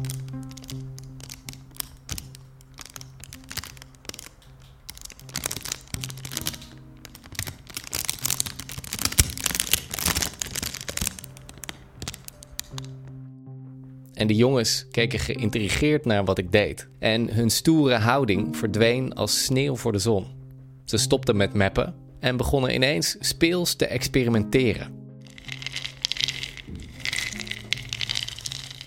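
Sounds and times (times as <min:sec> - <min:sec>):
thin plastic bag crinkling: 0:00.0 - 0:13.1, 0:25.2 - 0:28.8
speech: 0:14.3 - 0:25.0.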